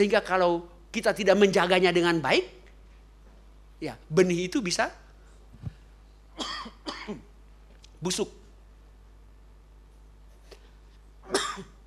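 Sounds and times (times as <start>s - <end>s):
speech: 0.0s - 2.6s, 3.8s - 5.0s, 8.0s - 8.4s
preacher coughing during a sermon: 6.4s - 7.3s, 11.3s - 11.8s.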